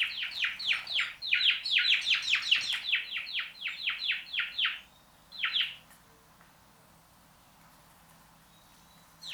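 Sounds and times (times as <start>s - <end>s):
house sparrow Passer domesticus chirping: 0.0s - 5.8s, 8.5s - 9.3s.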